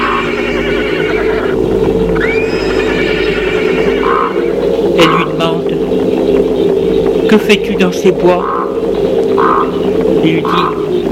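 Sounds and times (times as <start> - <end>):
horse neighing: 0.0 - 1.6, 2.2 - 5.5
steady continuous rumble: 0.0 - 11.0
speech: 7.4 - 8.6, 9.7 - 11.0.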